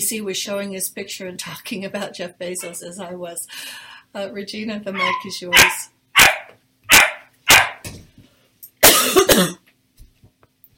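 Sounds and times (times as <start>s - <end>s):
speech: 0.0s - 5.9s
two 12-week-old sister puppies barking in sharp yaps: 5.0s - 7.8s.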